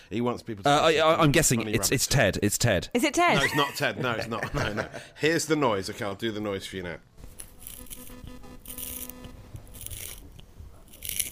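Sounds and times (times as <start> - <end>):
speech: 0.1 - 7.1
pencil sharpener grinding: 7.4 - 11.2.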